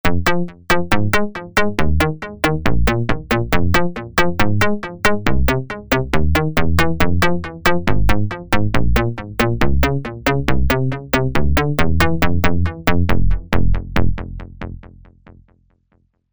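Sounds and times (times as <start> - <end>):
synth texture pluck: 0.0 - 14.5.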